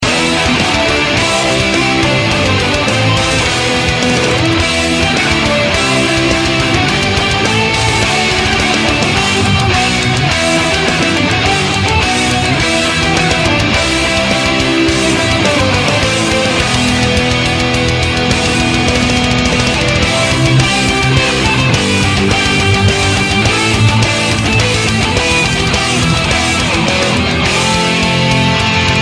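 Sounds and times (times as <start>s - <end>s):
metal ringtones: 0.0s - 29.0s.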